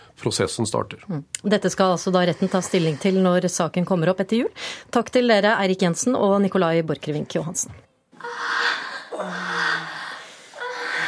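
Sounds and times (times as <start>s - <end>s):
speech: 0.2s - 8.5s
breathy gasps and moans from online pornography: 2.0s - 3.5s, 8.2s - 11.0s
heavy drawn-out breathing from online pornography: 2.1s - 3.4s, 4.5s - 4.9s, 8.2s - 11.0s.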